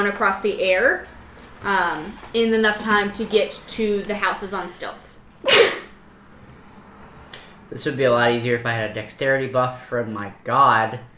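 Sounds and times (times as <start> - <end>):
speech: 0.0 - 5.6, 7.7 - 11.1
sharp sneeze: 5.4 - 6.0.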